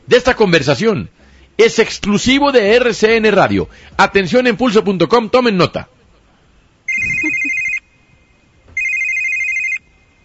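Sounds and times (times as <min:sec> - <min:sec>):
faint noise: 0:00.0 - 0:10.2
speech: 0:00.1 - 0:05.9
telephone ringing with a bright electronic tone: 0:06.9 - 0:07.9, 0:08.8 - 0:09.9.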